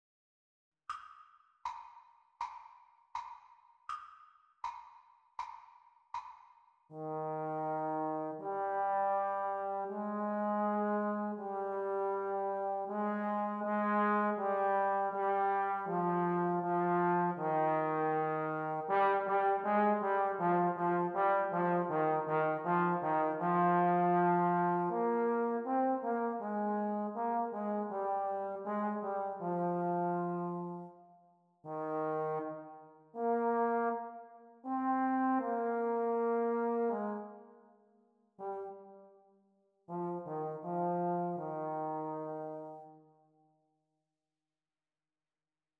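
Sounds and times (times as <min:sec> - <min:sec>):
exam-speed playalong backing track for E-flat tenor horn: 0:06.9 - 0:31.0, 0:31.6 - 0:37.6, 0:38.4 - 0:39.3, 0:39.9 - 0:43.0.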